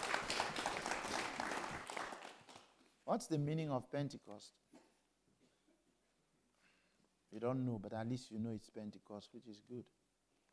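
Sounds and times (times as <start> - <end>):
church congregation clapping during a Pentecost service: 0.0 - 2.8
speech: 3.1 - 4.6, 7.3 - 10.0.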